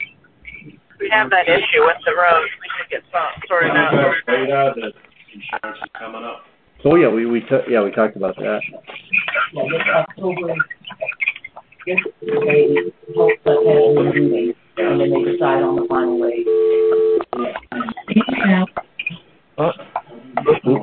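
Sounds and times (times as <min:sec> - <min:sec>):
talking: 0:00.0 - 0:16.5, 0:17.2 - 0:20.8
speech: 0:01.1 - 0:10.8, 0:11.9 - 0:18.8
telephone dialing tones with steady electronic beeps and held tones: 0:15.1 - 0:17.4.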